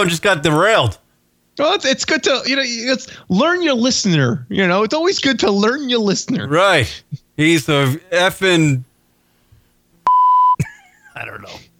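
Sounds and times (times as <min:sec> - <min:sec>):
speech: 0:00.0 - 0:01.0, 0:01.6 - 0:08.9, 0:11.2 - 0:11.7
steady beep tone at about 1 kHz: 0:10.1 - 0:10.6.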